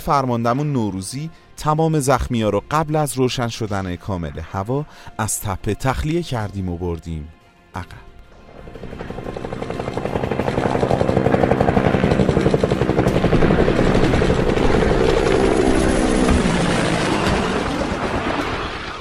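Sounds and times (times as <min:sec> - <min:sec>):
speech: 0:00.0 - 0:08.1
helicopters approaching with fast rotor chop: 0:08.4 - 0:19.0.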